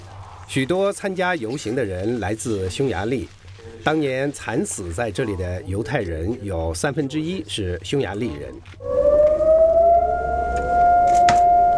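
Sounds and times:
speech: 0.5s - 9.2s
memorial siren wailing at a constant pitch: 8.8s - 11.7s.

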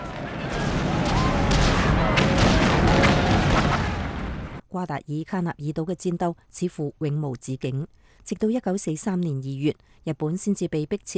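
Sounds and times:
deafening explosions and heavy blasts: 0.0s - 4.6s
falling bombs whistling: 0.0s - 4.6s
speech: 4.8s - 11.1s.

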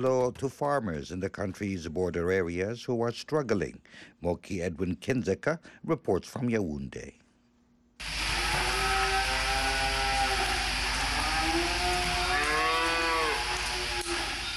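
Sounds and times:
speech: 0.0s - 7.2s
cattle mooing: 8.3s - 14.4s.

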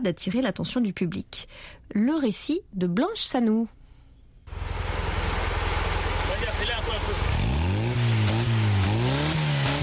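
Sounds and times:
speech: 0.0s - 3.8s
small blue off-road pickup truck built from recycled parts, engine revving: 4.5s - 9.8s.

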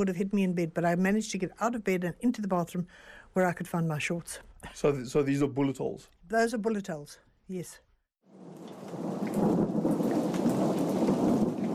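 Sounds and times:
speech: 0.0s - 7.8s
low rolling rumble of thunder: 8.3s - 11.7s
steady downpour of heavy rain: 8.3s - 11.7s.

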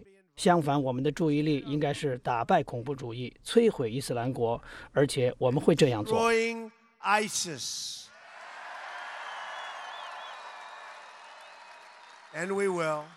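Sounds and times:
speech: 0.4s - 8.1s, 12.4s - 13.1s
large crowd of supporters cheering and applauding at a rally: 8.2s - 13.1s
whistles from rally crowd: 8.7s - 13.1s.

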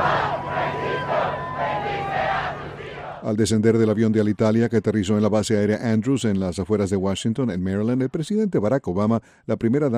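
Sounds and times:
large crowd shouting and cheering: 0.0s - 3.2s
speech: 3.2s - 9.9s.

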